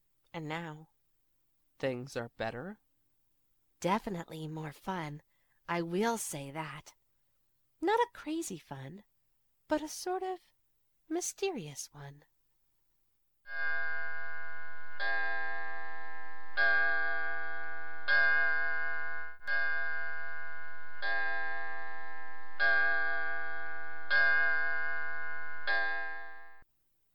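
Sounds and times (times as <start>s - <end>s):
speech: 0.4s - 1.0s, 1.8s - 2.8s, 3.8s - 7.0s, 7.8s - 9.1s, 9.7s - 10.5s, 11.1s - 12.3s
clock chiming nine o'clock: 13.5s - 26.6s.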